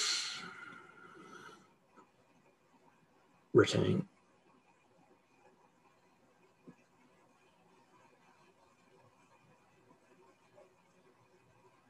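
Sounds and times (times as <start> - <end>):
deep inhalation in a guided breathing exercise: 0.0 - 1.6
speech: 3.6 - 4.1.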